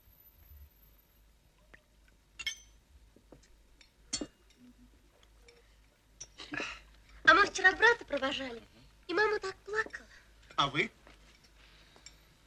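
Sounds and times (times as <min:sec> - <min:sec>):
quiet low noise: 0:00.0 - 0:12.4
glasses clinking in a toast at a family farewell meal: 0:02.4 - 0:02.8
speech: 0:07.6 - 0:10.0, 0:10.6 - 0:11.0.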